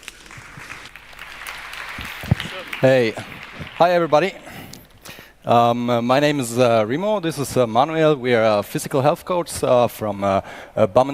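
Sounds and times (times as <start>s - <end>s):
audience applause at a talk event: 0.0s - 5.0s
speech: 2.8s - 4.4s, 5.5s - 11.1s.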